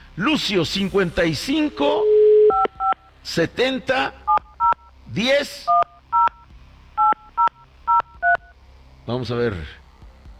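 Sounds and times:
speech: 0.2s - 2.1s, 3.2s - 4.2s, 5.1s - 5.8s, 9.1s - 9.8s
touch-tone beeps from a telephone number being dialled: 2.0s - 3.0s, 5.7s - 6.4s, 7.0s - 8.4s.

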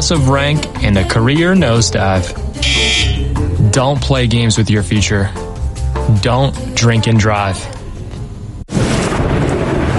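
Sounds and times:
speech: 0.1s - 2.8s, 3.7s - 5.4s, 6.1s - 7.8s
thunder rumbling from a storm: 8.7s - 9.9s.

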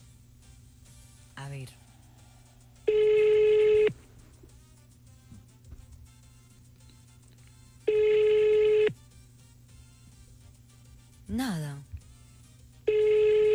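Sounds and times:
quiet telephone line hiss: 0.0s - 13.5s
speech: 1.5s - 1.9s
ringback tone on an outgoing telephone call: 2.1s - 4.1s, 7.7s - 9.2s, 12.5s - 13.5s.

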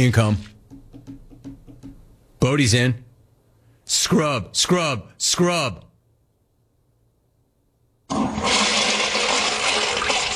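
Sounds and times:
speech: 0.0s - 0.6s, 2.4s - 3.0s, 3.9s - 5.9s, 8.1s - 8.6s
toilet flushing: 8.1s - 10.3s.

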